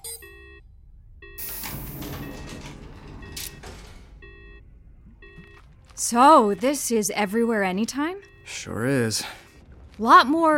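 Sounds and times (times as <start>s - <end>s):
electronic warning chimes: 0.0s - 0.6s, 1.2s - 9.6s
outer door sliding open with rushing hiss and rumble: 1.4s - 4.4s
speech: 6.0s - 9.4s, 10.0s - 10.5s.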